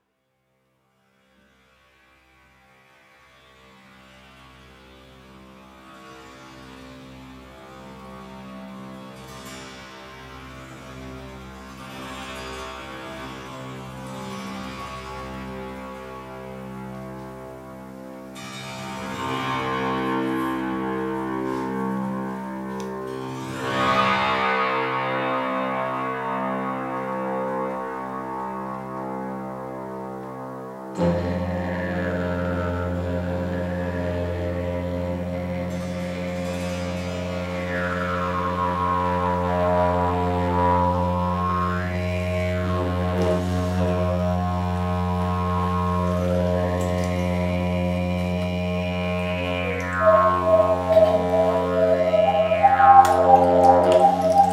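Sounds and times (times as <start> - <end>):
didgeridoo: 3.6 - 54.5.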